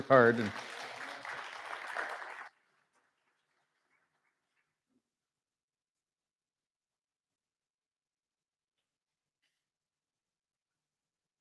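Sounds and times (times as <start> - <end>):
audience applause at a church service: 0.0 - 3.8.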